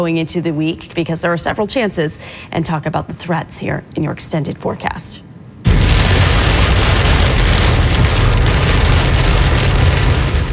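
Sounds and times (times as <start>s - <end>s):
speech: 0.0s - 5.2s
heavy rain drumming on a car windshield: 5.8s - 10.5s.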